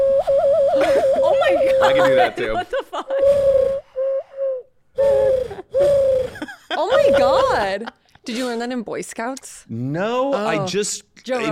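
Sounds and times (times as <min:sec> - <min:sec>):
person imitating a bird call by blowing into cupped hands: 0:00.0 - 0:01.9, 0:03.2 - 0:06.5
laughter: 0:00.4 - 0:03.3, 0:06.3 - 0:08.6
speech: 0:01.9 - 0:03.4, 0:07.2 - 0:11.5.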